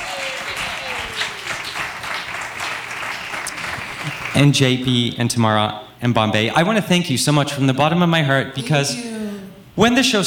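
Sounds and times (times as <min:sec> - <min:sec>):
audience applause for contest winners: 0:00.0 - 0:04.5
speech: 0:04.0 - 0:09.1, 0:09.8 - 0:10.2.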